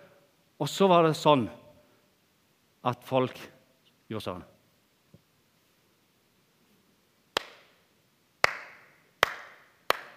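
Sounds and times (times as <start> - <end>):
speech: 0.6 - 1.6, 2.8 - 3.5, 4.1 - 4.5
audience hand claps in a hall: 7.3 - 7.8, 8.4 - 10.1.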